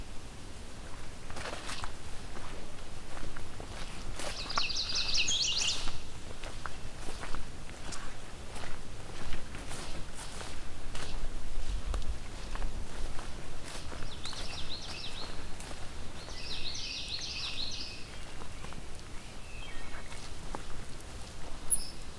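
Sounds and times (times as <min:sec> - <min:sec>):
footsteps crunching along a trail: 0:00.8 - 0:22.1
yellow warbler singing: 0:04.3 - 0:06.1, 0:13.9 - 0:20.3, 0:21.7 - 0:22.1.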